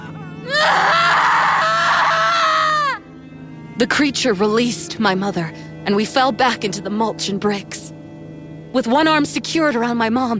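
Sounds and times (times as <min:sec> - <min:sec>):
woman screaming in pain: 0:00.4 - 0:03.0
speech: 0:03.8 - 0:08.0, 0:08.7 - 0:10.3.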